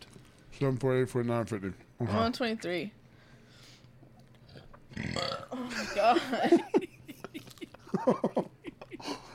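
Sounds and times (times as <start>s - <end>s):
speech: 0.6s - 3.0s, 5.8s - 6.8s, 8.0s - 8.6s
loud gravelly burp: 4.9s - 5.6s
laughter: 5.6s - 9.3s.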